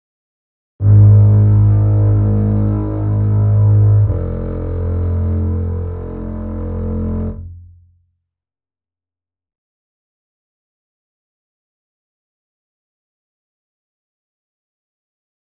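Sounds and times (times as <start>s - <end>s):
cello bass: 0.8s - 7.8s.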